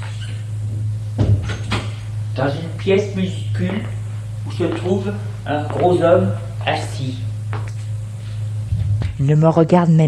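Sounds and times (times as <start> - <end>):
door creaking open: 0.0 - 0.5
steady low hum: 0.0 - 10.0
speech: 2.4 - 7.3, 9.2 - 10.0.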